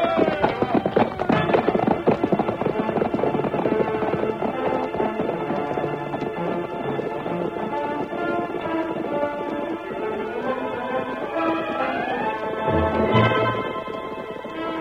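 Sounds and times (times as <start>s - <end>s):
galloping white horse hoofbeats: 0.0s - 14.7s
loud sweeping orchestral music: 6.0s - 14.7s.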